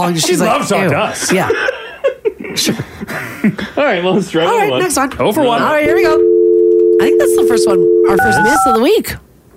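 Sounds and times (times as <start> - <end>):
speech: 0.0 - 1.7, 2.6 - 6.2, 7.0 - 9.2
touch-tone telephone keypad beeps: 5.9 - 8.8.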